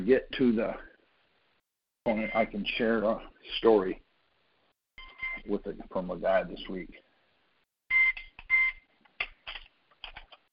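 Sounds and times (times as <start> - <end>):
speech: 0.0 - 0.9, 2.0 - 4.0, 5.4 - 7.0
phone reminder alarm beeping: 5.0 - 5.5, 7.9 - 8.8.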